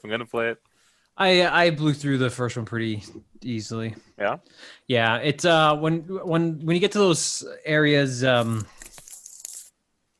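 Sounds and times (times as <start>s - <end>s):
speech: 0.0s - 8.8s
deck of cards being shuffled: 8.3s - 9.8s.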